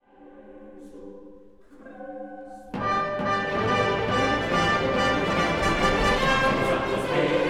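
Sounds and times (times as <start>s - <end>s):
assertive fanfare: 2.8s - 7.3s.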